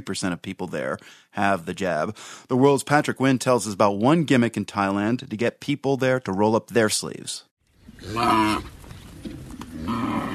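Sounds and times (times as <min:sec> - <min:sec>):
speech: 0:00.0 - 0:10.3
large cow grunting bellows in northern Thailand farming country: 0:07.9 - 0:08.7, 0:09.6 - 0:10.3.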